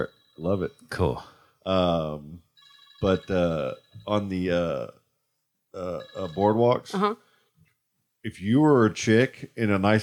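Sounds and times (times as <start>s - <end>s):
phone ringtone for an incoming call: 0.0s - 1.1s, 2.5s - 4.6s, 5.9s - 7.1s
speech: 0.0s - 2.4s, 3.0s - 5.0s, 5.8s - 7.2s, 8.2s - 10.0s.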